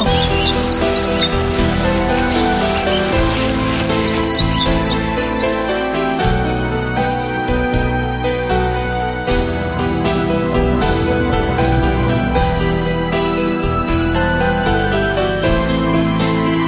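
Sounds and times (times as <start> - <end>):
swallow chirping: 0.0 - 5.4
loud full music: 0.0 - 16.6.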